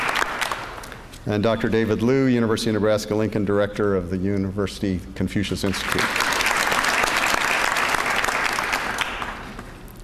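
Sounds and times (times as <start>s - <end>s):
audience applause: 0.0s - 0.8s, 5.8s - 9.7s
speech: 1.2s - 6.3s.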